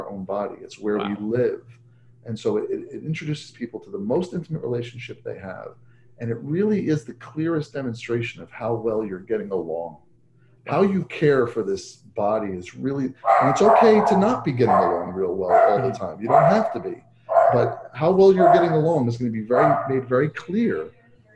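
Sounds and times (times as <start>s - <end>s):
speech: 0.0s - 10.0s, 10.6s - 21.0s
dog barking and yipping: 13.2s - 20.1s.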